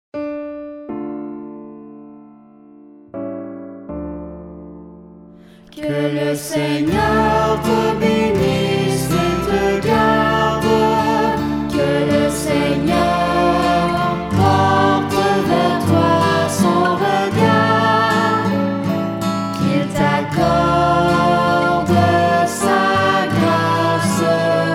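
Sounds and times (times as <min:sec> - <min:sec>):
benediction chant: 0:05.8 - 0:19.0, 0:19.6 - 0:24.7.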